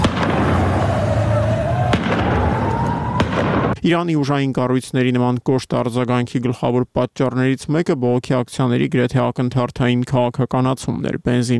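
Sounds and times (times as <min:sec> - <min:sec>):
gunshot from security forces firing from a residential rooftop at protesters: 0:00.0 - 0:01.1, 0:01.8 - 0:03.8
crowd din: 0:00.0 - 0:03.8
siren-like tone: 0:00.0 - 0:03.8
speech: 0:03.8 - 0:11.5.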